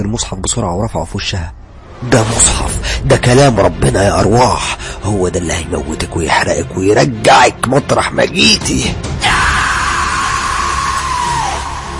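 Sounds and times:
speech: 0.0 - 9.1
woman screaming loudly: 9.2 - 11.9.

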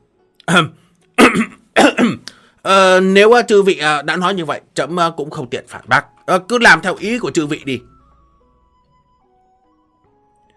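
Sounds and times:
dry throat-clearing coughs: 0.5 - 2.4
speech: 0.5 - 7.9.

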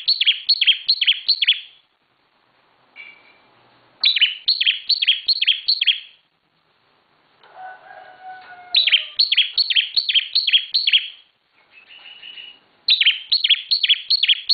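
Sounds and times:
bar-winged prinia singing high downslurred chirps: 0.0 - 1.8, 3.0 - 6.2, 8.7 - 14.5.

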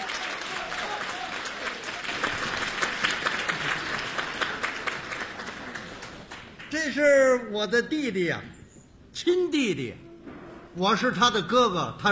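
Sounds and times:
audience clapping for performers welcomed onstage: 0.0 - 7.0
speech: 6.8 - 8.6, 9.2 - 10.0, 10.8 - 12.1.

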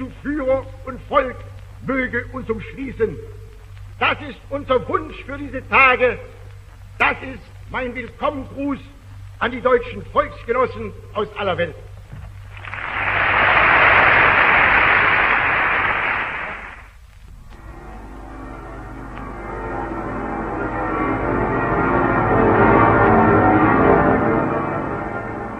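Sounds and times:
loud dense hiss: 0.0 - 19.1
speech: 0.2 - 3.4, 4.0 - 6.4, 7.0 - 11.8
church bells of city towers pealing: 17.6 - 25.5.

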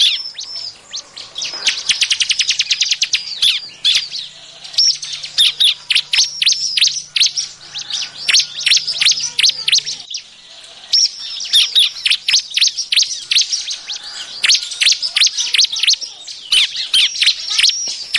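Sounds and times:
Bar-winged prinia calls used as a trapping lure: 0.0 - 18.1.

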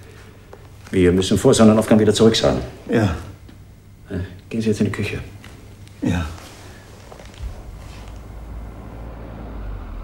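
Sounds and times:
speech: 0.9 - 3.3, 4.1 - 5.4, 6.0 - 6.4
car approaching: 7.3 - 10.0.

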